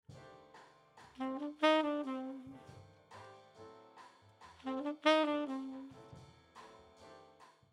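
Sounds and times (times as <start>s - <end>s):
filtered and compressed saxophone playing: 1.2s - 2.7s, 4.6s - 6.0s.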